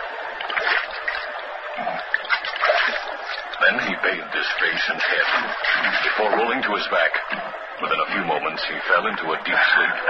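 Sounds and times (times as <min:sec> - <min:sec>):
water splashing and burbling along a small stream: 0:00.4 - 0:04.0, 0:04.6 - 0:07.5
laughter: 0:03.0 - 0:10.0
speech: 0:03.7 - 0:10.0.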